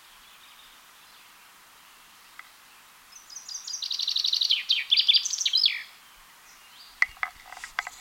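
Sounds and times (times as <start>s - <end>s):
common chaffinch Fringilla coelebs singing: 0.0s - 7.9s
sharp clicks and knocks: 7.0s - 7.9s.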